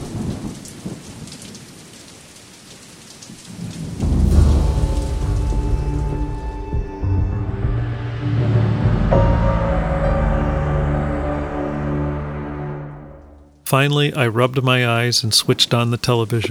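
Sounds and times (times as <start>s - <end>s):
steady hissing rain: 0.0s - 12.9s, 13.6s - 16.4s
distant thunder rumbling: 0.0s - 16.4s
speech: 13.7s - 16.4s.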